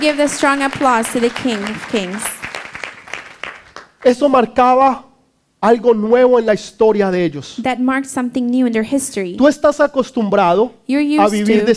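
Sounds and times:
speech: 0.0 - 2.4, 4.0 - 11.7
crowd applauding: 0.0 - 4.4
loud voice calling out over the applause: 11.2 - 11.7.

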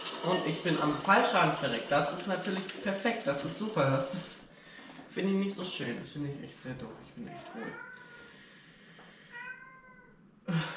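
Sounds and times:
speech: 0.2 - 4.4, 5.2 - 7.9
cat meowing: 7.3 - 8.4, 9.3 - 10.2.

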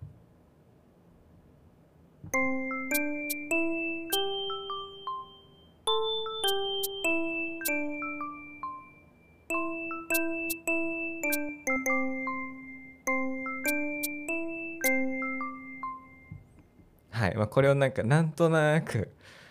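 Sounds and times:
self-composed keyboard melody with layered bell-like tones: 2.4 - 16.6
speech: 17.6 - 19.4.

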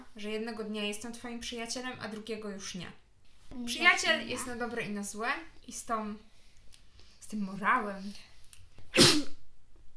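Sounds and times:
speech: 0.2 - 6.3, 7.3 - 8.3
person sneezing: 8.9 - 9.4.

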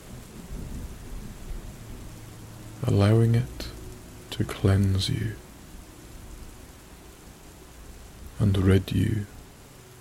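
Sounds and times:
low rumbling thunder: 0.0 - 2.7
steady rain pouring: 0.0 - 9.9
speech: 2.8 - 3.7, 4.4 - 5.4, 8.4 - 9.4.

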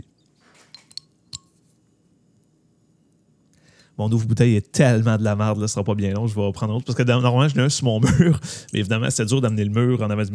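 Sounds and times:
bottle opener clinking against glass bottle: 0.6 - 1.6
speech: 4.0 - 10.3.

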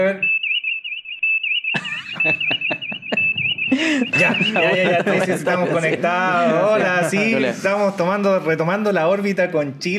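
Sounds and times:
continuous high-pitched warbling alarm tone: 0.0 - 5.6
laughter: 1.8 - 7.8
speech: 2.2 - 2.7, 3.8 - 9.9.

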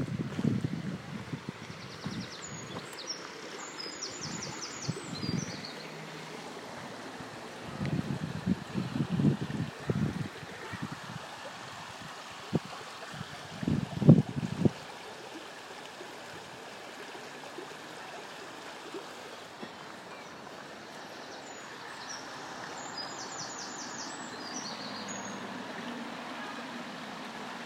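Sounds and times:
gusty wind: 0.0 - 2.8, 4.2 - 5.7, 6.8 - 14.8
river flowing around the edge of a park: 0.0 - 27.6.

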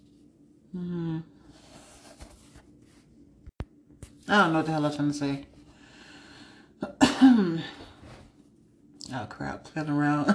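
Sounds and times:
speech: 0.7 - 1.3, 4.3 - 5.5, 9.4 - 10.3
person coughing: 6.8 - 7.8.

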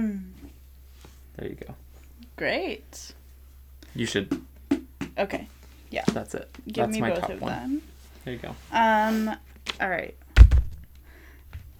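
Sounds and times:
speech: 1.4 - 3.2, 3.9 - 4.5, 5.2 - 10.2
large heavy book thudding onto a chair: 10.4 - 10.8.

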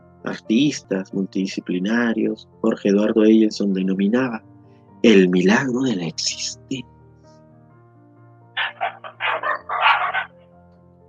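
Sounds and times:
speech: 0.3 - 7.0
dog barking in sharp yaps: 8.6 - 10.3.

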